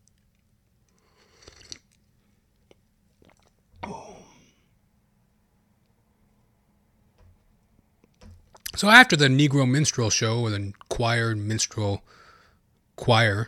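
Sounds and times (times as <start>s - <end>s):
person slurping a sip of tea: 1.2s - 2.0s
speech: 8.8s - 12.2s, 13.0s - 13.4s.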